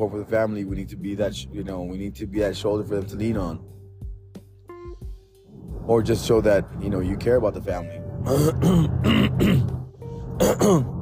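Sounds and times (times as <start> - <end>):
speech: 0.0 - 3.8, 5.9 - 9.8, 10.4 - 11.0
man clearing throat: 8.3 - 9.8, 10.4 - 11.0.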